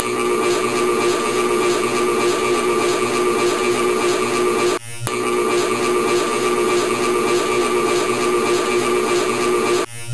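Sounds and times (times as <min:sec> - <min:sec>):
electronic equipment: 0:00.0 - 0:10.1.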